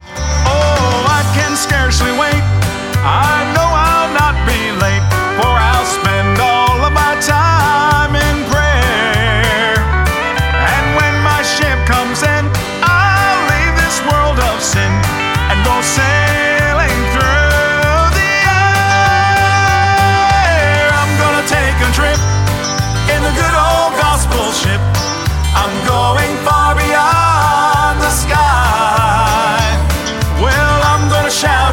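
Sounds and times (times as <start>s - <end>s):
gospel music: 0.0s - 31.7s.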